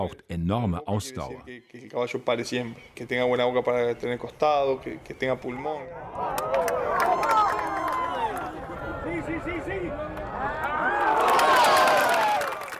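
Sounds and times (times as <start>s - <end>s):
speech: 0.0s - 7.3s
large outdoor crowd murmuring at a polo championship match: 5.5s - 11.1s
crowd cheering at a polo championship match: 5.8s - 12.7s.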